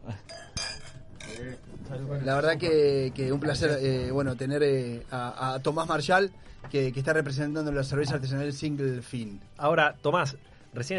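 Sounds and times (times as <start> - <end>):
glasses clinking in a toast: 0.1 - 1.8
lively chatter and voices in a busy room: 1.2 - 5.1
speech: 1.4 - 10.9.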